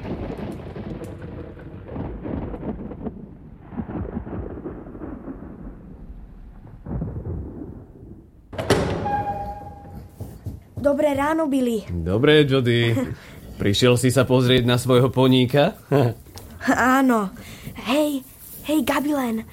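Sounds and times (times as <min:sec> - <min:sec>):
deep rolling thunder from an approaching storm: 0:00.0 - 0:10.2
speech: 0:10.9 - 0:19.5.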